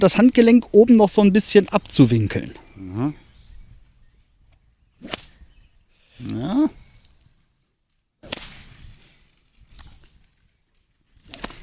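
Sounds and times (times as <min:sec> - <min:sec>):
speech: 0:00.0 - 0:03.2, 0:06.2 - 0:06.8
sharp whip cracks: 0:05.0 - 0:05.4, 0:08.2 - 0:09.0, 0:11.2 - 0:11.6.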